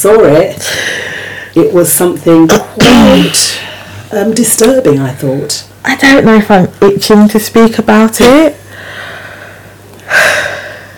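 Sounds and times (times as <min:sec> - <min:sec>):
speech: 0:00.0 - 0:01.0, 0:01.6 - 0:08.6
deep breathy gasp: 0:00.6 - 0:01.6, 0:08.7 - 0:10.9.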